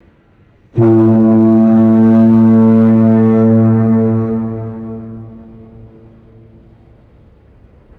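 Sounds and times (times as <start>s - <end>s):
loud deep foghorn blast with echo: 0.8s - 7.3s.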